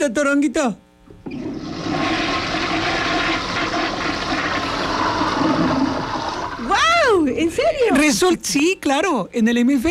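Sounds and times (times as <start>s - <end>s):
speech: 0.0s - 1.4s, 6.7s - 9.8s
toilet flushing with water swirling down the bowl: 1.2s - 7.2s.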